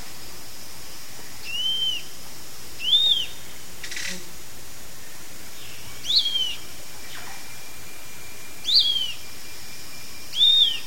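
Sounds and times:
faint background noise: 0.0s - 10.8s
Zimmer's flatbill singing thin arched whistles in eastern lowlands of South America: 1.5s - 2.1s, 2.8s - 3.4s, 6.0s - 6.6s, 8.6s - 9.4s, 10.3s - 10.8s.

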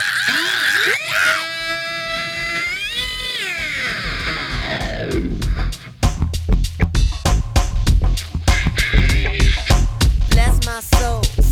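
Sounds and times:
person screaming: 0.0s - 4.9s
rhythmic pounding beats: 3.7s - 11.5s.

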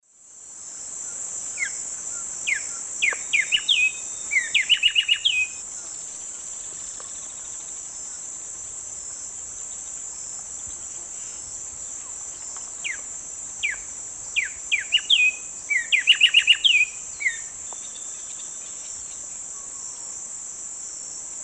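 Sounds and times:
Arremonops conirostris singing in South America Eastern Lowlands: 1.6s - 5.6s, 11.9s - 19.9s.

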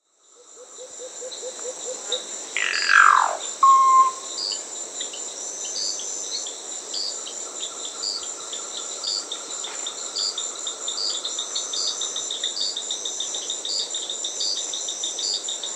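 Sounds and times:
high-pitched insect chorus in South America: 0.2s - 15.7s
Solitary Cacique harsh downward-sweeping call: 2.6s - 4.3s
Solitary Cacique brief clear whistle: 3.2s - 4.3s.

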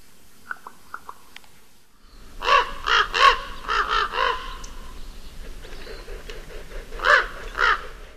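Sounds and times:
Common Raven uttering rough nasal croaks: 2.3s - 8.1s.

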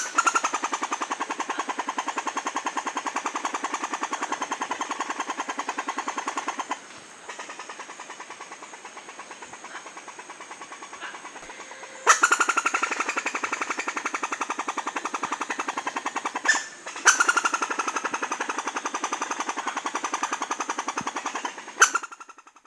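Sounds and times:
Southern Amazon red squirrel chattering call: 0.0s - 22.6s
steady high-pitched whine: 11.0s - 13.1s.

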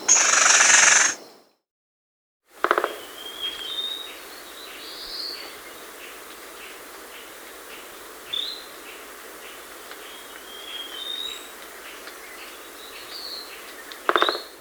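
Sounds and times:
Crimson-bellied woodpecker in South America: 0.1s - 1.2s, 2.6s - 3.1s, 13.6s - 14.5s.

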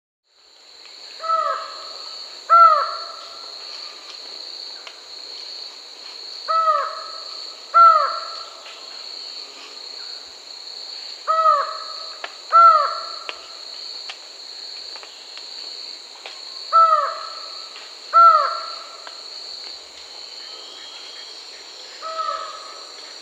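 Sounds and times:
Lined Forest-Falcon Micrastur gilvicollis in Peru: 1.2s - 4.0s, 6.5s - 8.7s, 11.3s - 13.5s, 16.7s - 19.1s, 20.4s - 23.2s.

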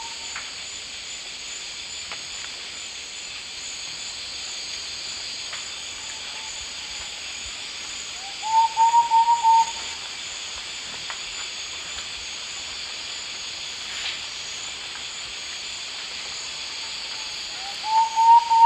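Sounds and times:
Myrmothera campanisona singing in the Eastern Lowlands of South America: 8.4s - 9.8s, 17.7s - 18.6s.

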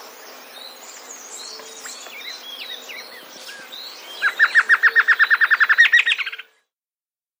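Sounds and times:
background bird whistles and chirps: 3.4s - 6.5s
Chapman's Antshrike calling in South America: 4.2s - 6.5s.

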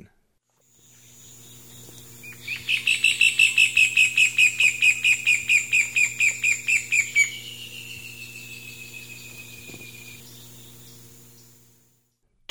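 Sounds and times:
pale-legged hornero calling: 0.8s - 11.7s.

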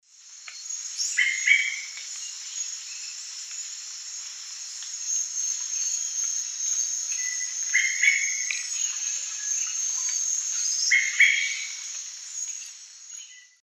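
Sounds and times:
Turdus lawrencii calls in the Eastern Lowlands of South America: 1.0s - 2.0s, 7.2s - 12.0s.

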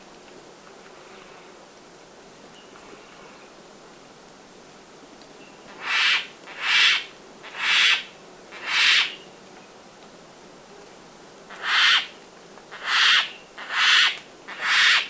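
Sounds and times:
turquoise jay giving harsh rasping calls in Ecuador: 5.8s - 9.2s, 11.5s - 12.1s, 12.7s - 15.0s.

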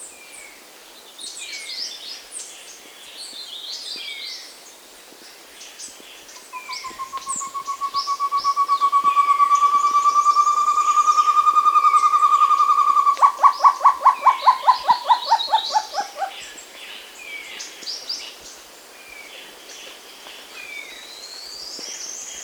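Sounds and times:
short-tailed antthrush singing soft rising hoots in South America: 6.4s - 16.4s.

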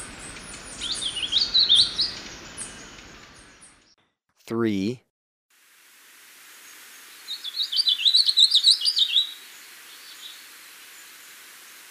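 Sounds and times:
Brown-capped vireo warbling song in Ecuador: 0.0s - 4.0s, 7.2s - 10.5s
speech: 4.5s - 5.1s.

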